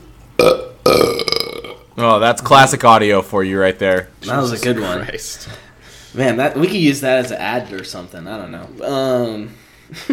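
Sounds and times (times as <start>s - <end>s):
person burping: 0.4s - 1.9s
speech: 2.0s - 10.1s.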